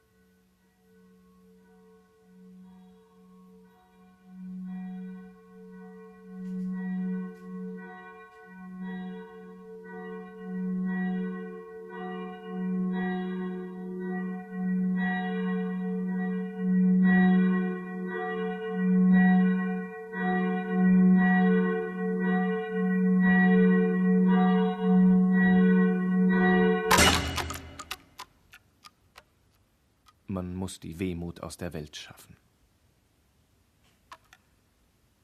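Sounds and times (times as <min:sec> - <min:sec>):
church bells ringing in overlapping peals: 0:04.5 - 0:28.0
speech: 0:30.7 - 0:32.5.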